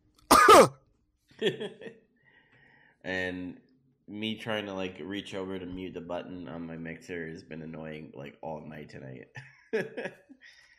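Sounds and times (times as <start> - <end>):
loud cough from someone with a cold: 0.3 - 0.8
speech: 0.6 - 0.8, 1.4 - 2.1, 3.0 - 10.7.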